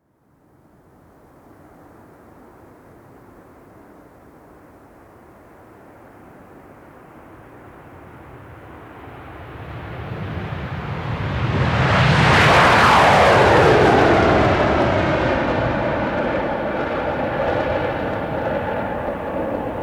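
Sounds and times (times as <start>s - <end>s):
Concorde jet aircraft taking off: 7.9s - 19.8s.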